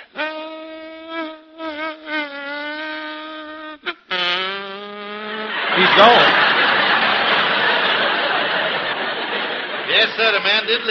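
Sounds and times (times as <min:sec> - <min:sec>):
voice imitating a mosquito flying and landing on Limburger cheese: 0:00.0 - 0:06.2
laughter: 0:05.4 - 0:10.9
speech: 0:05.8 - 0:06.4, 0:10.1 - 0:10.9.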